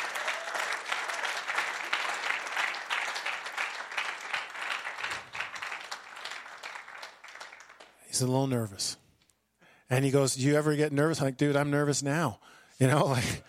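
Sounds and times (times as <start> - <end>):
large audience applauding: 0.0 - 8.0
speech: 8.2 - 9.0, 9.9 - 13.4.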